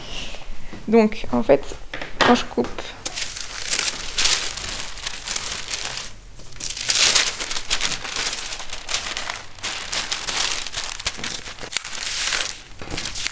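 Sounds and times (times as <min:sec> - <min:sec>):
speech: 0:00.9 - 0:03.0
paper pattern crackling: 0:02.9 - 0:13.3
sewing fabric rustling as it is laid flat: 0:02.9 - 0:13.3.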